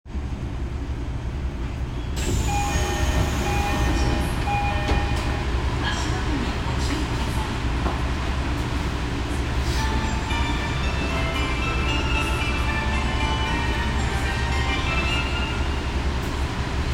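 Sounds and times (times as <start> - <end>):
train sounds: 0.2 - 16.9.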